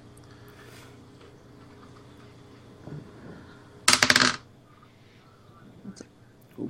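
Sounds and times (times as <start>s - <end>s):
d20 die rolled across a hard tabletop: 3.9s - 4.4s.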